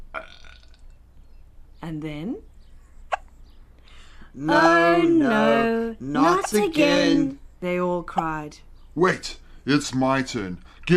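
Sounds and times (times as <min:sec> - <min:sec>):
loud baby burp, a short throaty gurgle: 0:00.1 - 0:00.8
speech: 0:01.8 - 0:02.5, 0:04.4 - 0:10.9.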